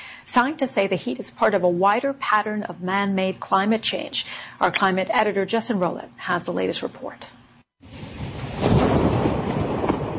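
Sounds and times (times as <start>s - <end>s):
speech: 0.4s - 7.4s
rolling thunder from overnight storm: 7.8s - 10.1s.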